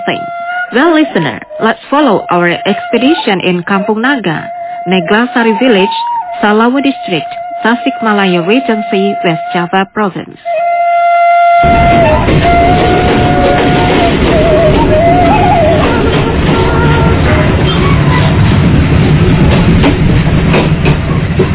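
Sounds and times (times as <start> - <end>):
whistle-like tone: 0.0 - 9.6, 10.5 - 16.0
diesel train engine roaring on rails in West Java Indonesia: 0.0 - 10.3, 11.6 - 21.5
speech: 0.0 - 10.6, 11.6 - 15.5.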